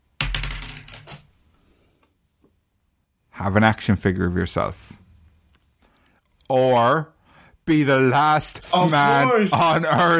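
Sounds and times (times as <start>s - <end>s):
dice tumbling across a hard surface: 0.2s - 1.3s
speech: 3.4s - 5.0s, 6.5s - 7.1s, 7.7s - 10.1s.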